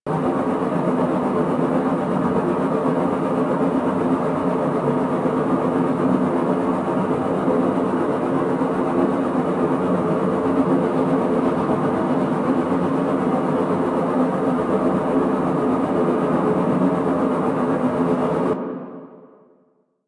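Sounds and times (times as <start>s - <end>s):
ambience: 0.1s - 19.6s.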